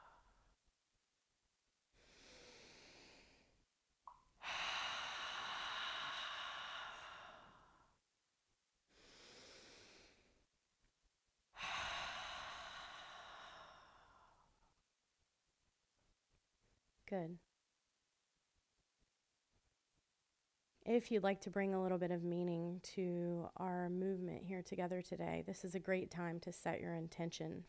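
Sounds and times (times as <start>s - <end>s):
deep breathing in through the nose and out through the mouth: 1.9s - 3.6s, 4.4s - 8.0s, 8.9s - 10.5s, 11.5s - 14.8s
speech: 17.1s - 17.5s, 21.0s - 27.6s.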